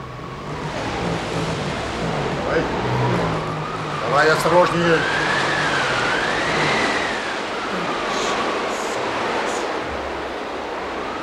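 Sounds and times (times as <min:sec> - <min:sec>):
car engine whine: 0:00.0 - 0:11.2
car rolling slowly over wooden plank tracks: 0:00.4 - 0:07.1
speech: 0:04.2 - 0:05.2.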